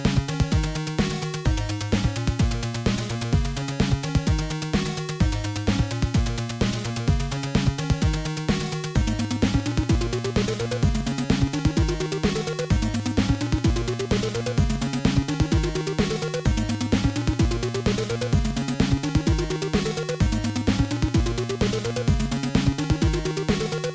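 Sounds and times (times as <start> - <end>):
beat: 0.1 - 23.9.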